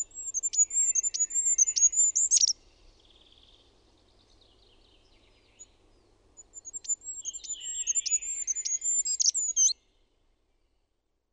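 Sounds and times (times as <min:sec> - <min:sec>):
goldcrest song phrase: 0:00.0 - 0:10.8.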